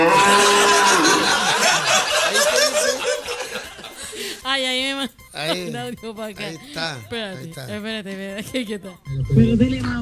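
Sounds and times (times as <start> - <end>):
cow mooing: 0.0 - 1.2, 9.1 - 9.9
laughter-like chuckling: 0.8 - 9.9
speech: 5.1 - 9.9.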